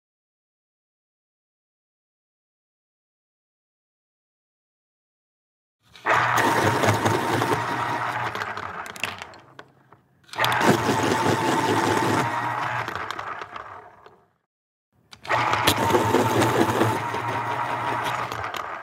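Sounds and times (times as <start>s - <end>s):
pencil sharpener: 5.9s - 9.7s, 10.3s - 14.2s, 15.1s - 18.8s.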